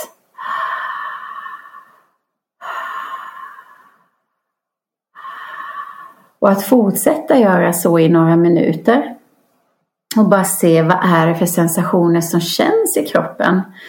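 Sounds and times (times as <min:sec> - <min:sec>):
slow deep open-mouthed belly breathing: 0:00.4 - 0:04.3, 0:05.2 - 0:06.4
speech: 0:06.4 - 0:09.2, 0:10.2 - 0:13.8.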